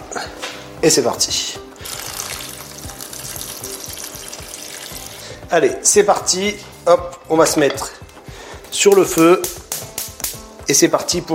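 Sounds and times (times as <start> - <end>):
speech: 0.2 - 1.6, 5.5 - 8.0, 8.8 - 9.4, 10.7 - 11.3
cold water pouring into a pot of soaked white beans: 1.8 - 5.4.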